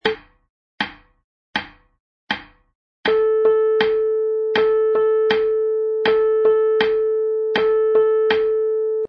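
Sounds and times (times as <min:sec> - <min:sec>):
midi piano playing tied eighth and quarter notes: 0:03.1 - 0:09.0.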